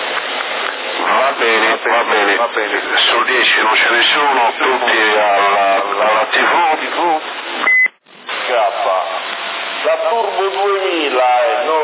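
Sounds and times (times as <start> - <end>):
band-limited voices on a CB radio channel: 1.0 - 7.3, 8.4 - 11.8
speech: 1.4 - 7.7, 9.8 - 11.8
short electronic beep on a CB radio channel in Sassari: 7.6 - 8.0.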